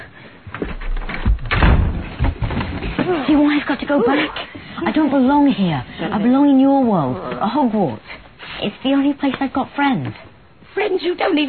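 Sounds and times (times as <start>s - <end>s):
door rattling: 0.8s - 3.4s
door slamming shut: 1.2s - 2.4s
speech: 3.6s - 10.2s, 10.8s - 11.4s.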